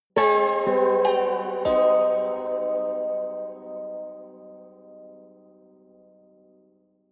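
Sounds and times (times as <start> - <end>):
haunted strings sequence: 0.2 - 5.8.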